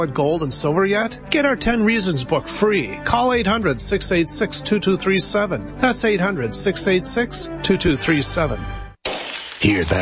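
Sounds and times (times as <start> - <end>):
speech: 0.0 - 8.8, 9.6 - 10.0
glass shattering as thieves trash and ransack a house: 9.0 - 10.0.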